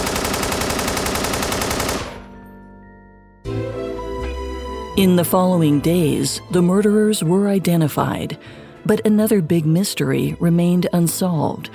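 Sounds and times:
rapid automatic machine gun fire from a mobster shooting: 0.0s - 2.3s
speech: 5.0s - 11.7s.

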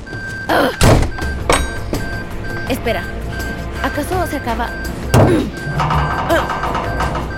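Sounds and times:
heavy door slamming shut: 0.8s - 3.7s, 4.8s - 7.3s
speech: 2.7s - 3.2s, 3.8s - 6.6s.

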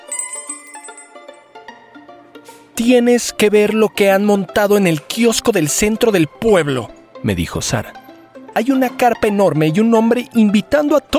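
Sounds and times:
small bell on a hardware store door jingling: 0.0s - 1.8s
speech: 2.8s - 8.0s, 8.6s - 11.1s.

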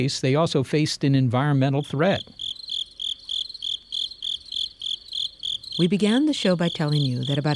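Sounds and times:
speech: 0.0s - 2.4s, 5.8s - 7.5s
crickets chirping: 1.7s - 7.5s.

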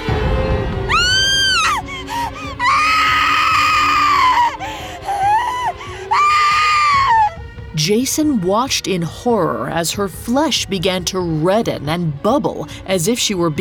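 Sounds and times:
woman screaming in agony: 0.9s - 7.4s
speech: 7.9s - 13.6s.

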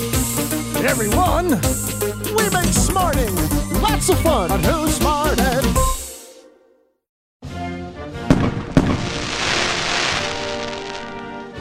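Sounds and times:
speech: 0.8s - 6.0s
fireworks bangs: 8.3s - 11.3s.

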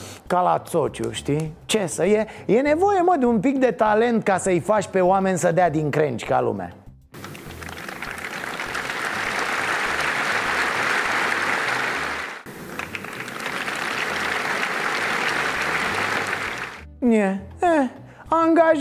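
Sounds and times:
speech: 0.3s - 6.8s, 17.2s - 17.4s, 18.4s - 18.7s
crowd applause at a political rally: 7.2s - 16.8s.

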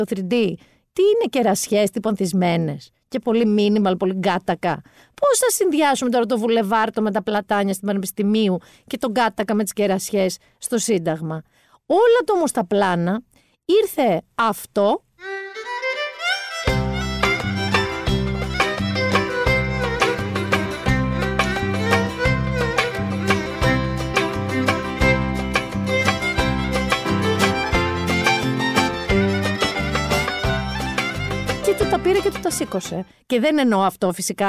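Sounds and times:
speech: 0.0s - 15.3s, 31.8s - 34.4s
Greek island balos instrumental folk dance music: 15.2s - 33.1s.

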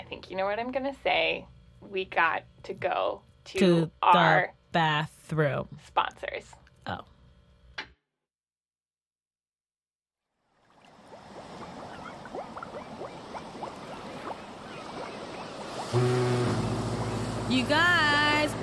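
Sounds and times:
speech: 0.2s - 7.1s, 15.9s - 16.3s, 17.5s - 18.6s
Atlantic Ocean waves and surf: 10.7s - 18.2s.

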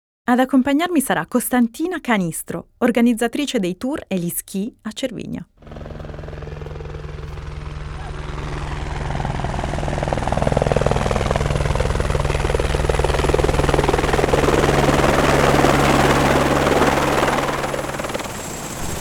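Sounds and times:
speech: 0.3s - 5.9s
small powerful helicopter approaching at Cervinia on a clear windless day: 5.6s - 18.9s.

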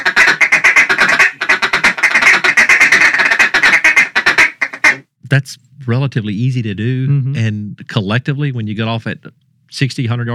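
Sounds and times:
duck callers blowing hen quacks and cutting: 0.0s - 5.1s
speech: 5.3s - 10.3s.

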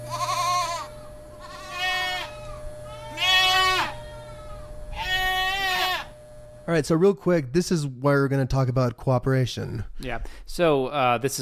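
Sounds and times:
angry goats bleating: 0.0s - 6.1s
faint steady hum: 0.0s - 11.4s
speech: 6.7s - 11.4s.

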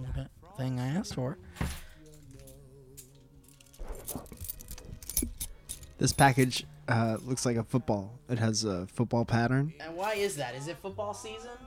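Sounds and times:
speech: 0.6s - 1.8s, 6.0s - 11.6s
keys jangling: 2.0s - 6.6s.

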